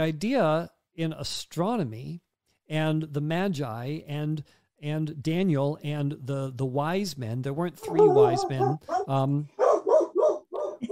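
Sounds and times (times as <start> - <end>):
speech: 0.0 - 9.6
small puppy yelping and barking: 7.8 - 10.9.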